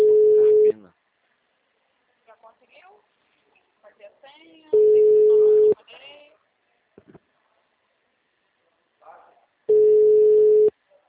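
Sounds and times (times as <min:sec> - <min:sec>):
loud flat electronic tone of a telephone call failing to ring through: 0:00.0 - 0:00.7, 0:04.7 - 0:05.8, 0:09.7 - 0:10.7.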